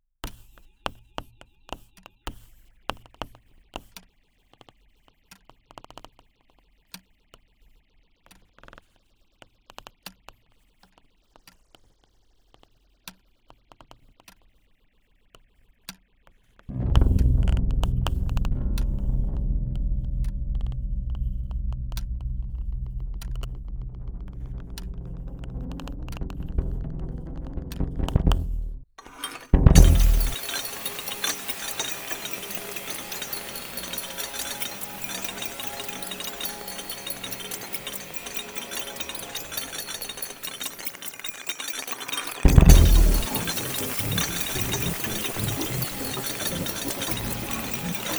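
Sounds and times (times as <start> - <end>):
all stems of the source version before individual processing: 16.7 - 48.1.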